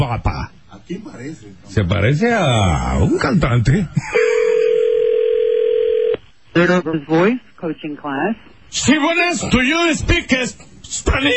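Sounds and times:
speech: 0.2 - 4.2, 6.6 - 11.3
telephone dial tone while placing a call: 4.6 - 6.2.

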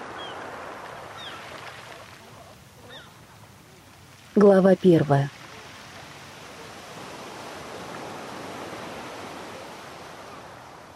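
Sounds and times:
sea waves: 0.0 - 10.9
speech: 4.4 - 5.4.

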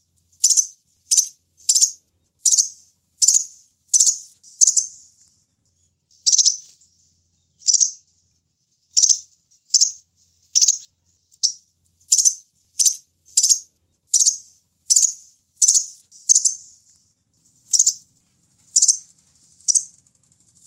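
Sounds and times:
sunbird calling: 0.0 - 5.1, 6.1 - 6.8, 7.6 - 8.0, 8.9 - 16.8, 17.7 - 18.0, 18.7 - 19.9.

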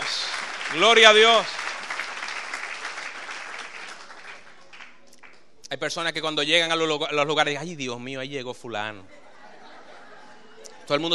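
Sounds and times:
congregation applauding at a morning church service: 0.0 - 5.5
speech: 0.7 - 1.6, 5.7 - 9.2, 10.9 - 11.1
laughter: 9.0 - 11.1.

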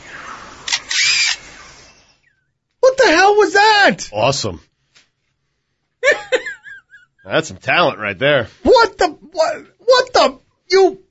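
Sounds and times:
male bird in a forest mimicking a camera with a motor drive: 0.0 - 2.4
speech: 3.3 - 4.7, 7.2 - 11.0.

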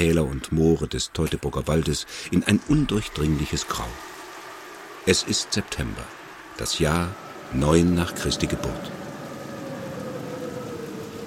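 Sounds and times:
speech: 0.0 - 4.1, 5.0 - 9.1
autumn rain: 0.0 - 11.2
cold autumn wind whistling: 2.7 - 11.2.

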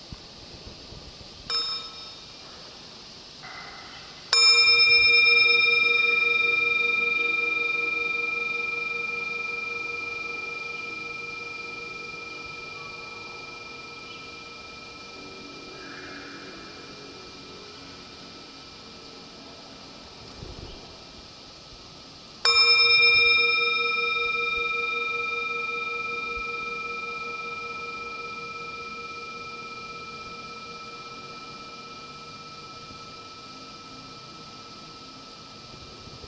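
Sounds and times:
bell struck during a mindfulness meditation session: 1.5 - 2.3, 4.4 - 18.2, 22.5 - 36.2.

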